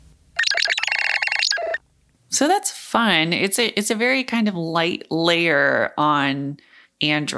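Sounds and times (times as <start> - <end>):
retro gaming console style chiptune phone ringtone: 0.4 - 1.8
speech: 2.4 - 7.3.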